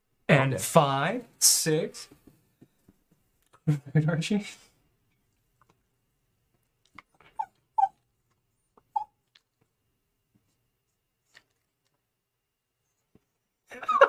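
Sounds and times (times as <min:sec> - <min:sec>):
speech: 0:00.3 - 0:02.2, 0:03.7 - 0:04.7
dog whimpering and yipping: 0:07.3 - 0:08.0.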